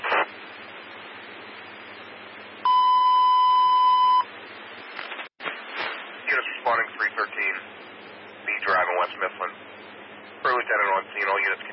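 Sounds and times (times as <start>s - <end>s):
constant hiss: 0.0s - 11.7s
electronic alarm beep: 2.6s - 4.3s.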